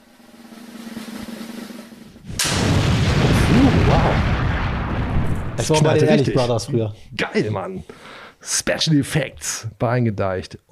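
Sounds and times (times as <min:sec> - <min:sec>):
loud bright crash: 0:00.0 - 0:03.4
drum roll: 0:00.0 - 0:04.3
speech: 0:05.6 - 0:10.7.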